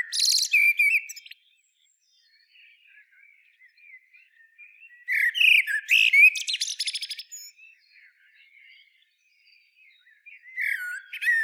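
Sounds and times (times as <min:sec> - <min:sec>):
common blackbird song phrase, Turdus merula: 0:00.0 - 0:11.4.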